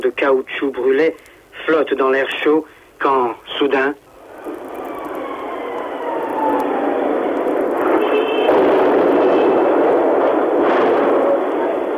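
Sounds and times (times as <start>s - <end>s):
hiss of a noisy recording: 0.0s - 11.9s
speech: 0.1s - 4.6s
heavy shell explosions: 4.4s - 11.9s
faint descending whistle of an incoming shell: 7.9s - 8.6s.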